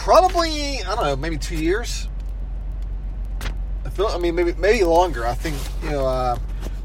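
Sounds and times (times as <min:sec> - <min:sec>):
car interior rumble with road and engine drone while driving: 0:00.0 - 0:06.8
speech: 0:00.1 - 0:02.1, 0:04.0 - 0:06.5.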